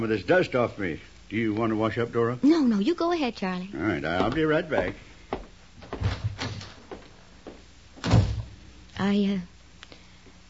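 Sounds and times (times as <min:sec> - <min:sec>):
speech: 0:00.0 - 0:05.1, 0:09.0 - 0:09.5
door knocking thuds and rattles: 0:05.8 - 0:06.8, 0:08.0 - 0:08.6
heavier door bump: 0:05.8 - 0:06.9.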